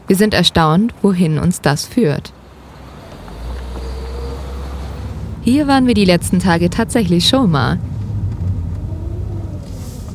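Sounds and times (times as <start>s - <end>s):
road noise from inside a moving car: 0.0s - 10.1s
speech: 0.1s - 2.4s, 5.5s - 7.9s
car engine rumble heard from inside a moving car: 2.2s - 10.1s.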